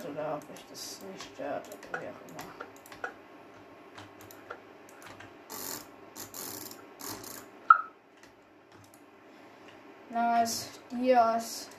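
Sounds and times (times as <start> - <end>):
speech: 0.1 - 2.9, 10.1 - 11.7
keyboard and mouse clicking: 0.4 - 3.2, 4.0 - 9.0.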